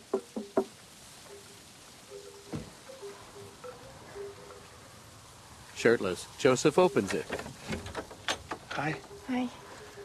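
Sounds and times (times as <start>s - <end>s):
knocking on a window of a garden suite: 0.1s - 0.7s
speech: 5.8s - 7.9s, 8.8s - 9.6s.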